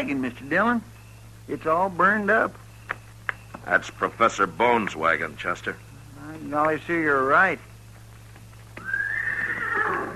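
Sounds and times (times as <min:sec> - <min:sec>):
speech: 0:00.0 - 0:02.6, 0:03.6 - 0:07.7
horse neighing: 0:08.8 - 0:10.1.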